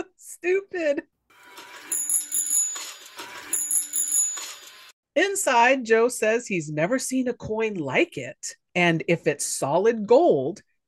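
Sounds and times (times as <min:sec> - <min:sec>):
speech: 0:00.2 - 0:01.1, 0:05.2 - 0:10.7
small bicycle-style tricycle bell ringing: 0:01.8 - 0:04.8.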